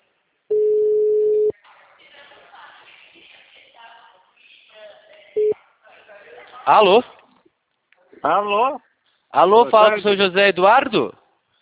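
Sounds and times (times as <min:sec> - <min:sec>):
telephone tone while calling a client: 0:00.5 - 0:01.5
speech: 0:06.6 - 0:07.2, 0:08.2 - 0:11.2.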